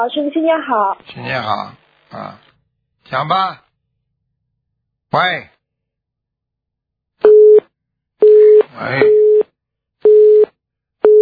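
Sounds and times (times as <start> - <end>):
speech: 0.0 - 2.5, 3.1 - 3.6, 5.1 - 5.6, 8.8 - 9.3
telephone busy tone after a call drops: 10.1 - 11.1.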